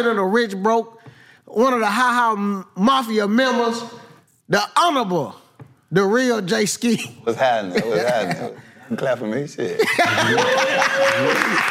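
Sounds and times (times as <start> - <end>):
speech: 0.0 - 11.6
burst of voiced laughter and chuckles: 9.8 - 11.6
overlapping voices: 10.1 - 11.6.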